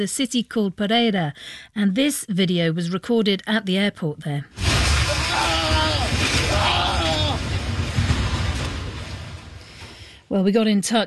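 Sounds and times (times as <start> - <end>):
speech: 0.0 - 4.7, 10.3 - 11.0
earthquake rumble and roar at an airport: 4.5 - 10.3
man shouting during an earthquake: 5.1 - 7.4.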